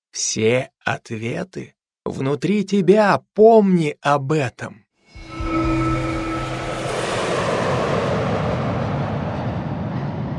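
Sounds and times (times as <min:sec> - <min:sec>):
speech: 0:00.2 - 0:04.8
thin tonal whine: 0:05.1 - 0:10.0
airplane engines humming: 0:05.4 - 0:10.3.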